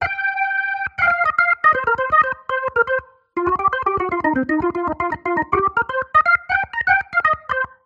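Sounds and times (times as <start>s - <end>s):
organ through rotary speaker, dry: 0.0s - 7.8s.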